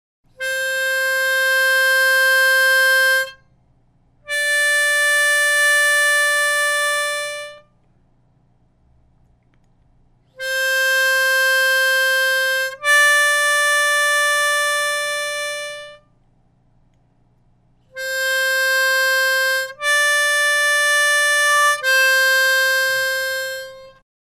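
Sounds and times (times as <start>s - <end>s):
harmonica playing exercises: 0.4s - 3.5s, 4.2s - 7.7s, 10.4s - 16.1s, 17.9s - 24.0s.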